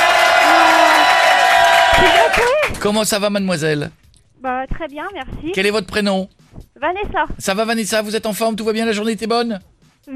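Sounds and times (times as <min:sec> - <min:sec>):
audience whoops and shouts: 0:00.0 - 0:02.7
live studio audience clapping: 0:00.0 - 0:03.2
speech: 0:02.8 - 0:10.1.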